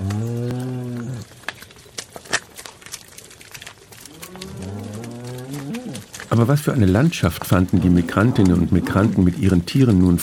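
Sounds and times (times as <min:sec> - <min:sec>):
cow mooing with a long low bellow: 0:00.0 - 0:01.3, 0:04.1 - 0:06.2, 0:07.4 - 0:09.4
clattering noises: 0:00.0 - 0:10.2
soft rustling: 0:00.0 - 0:10.2
speech: 0:06.3 - 0:10.2.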